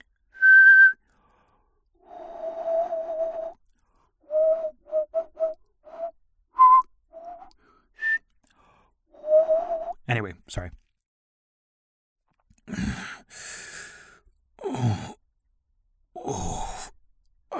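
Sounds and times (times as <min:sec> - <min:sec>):
person whistling a traditional tune: 0:00.3 - 0:01.1, 0:02.0 - 0:03.6, 0:04.2 - 0:08.3, 0:09.2 - 0:10.1
speech: 0:10.1 - 0:10.8.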